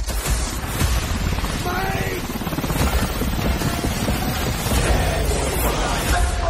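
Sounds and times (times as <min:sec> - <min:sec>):
rotors of several helicopters flying overhead: 0:00.2 - 0:06.4.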